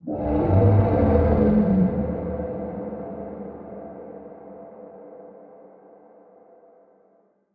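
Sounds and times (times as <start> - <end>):
unknown kaiju creature sounds: 0.0 - 3.6.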